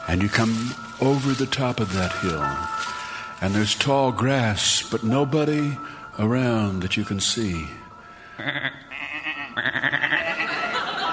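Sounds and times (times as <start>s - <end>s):
soft outdoor hiss: 0.0s - 9.6s
speech: 0.1s - 7.8s, 8.4s - 9.0s, 9.6s - 10.1s
sheep bleating: 8.4s - 10.4s
laughter: 9.6s - 11.1s.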